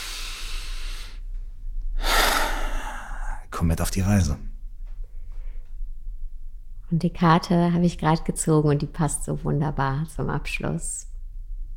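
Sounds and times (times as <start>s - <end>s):
person taking a deep breath in and out: 0.0s - 1.3s, 2.0s - 3.5s
speech: 3.6s - 4.5s, 6.9s - 11.1s.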